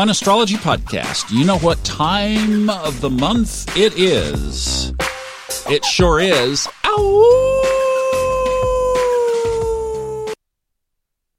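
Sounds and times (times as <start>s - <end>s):
speech: 0.0s - 5.0s, 5.6s - 7.6s
coyote howling: 5.6s - 10.4s
faint coyote yips: 7.0s - 10.4s.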